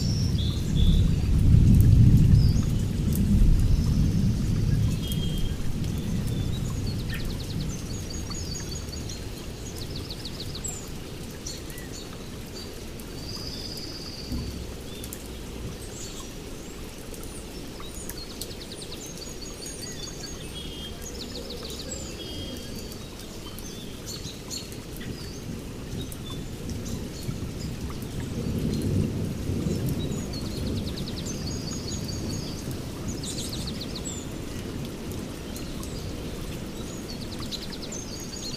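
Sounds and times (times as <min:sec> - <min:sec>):
low rolling thunder: 0:00.0 - 0:08.0, 0:27.6 - 0:33.3
steady rain through a forest: 0:00.0 - 0:38.5.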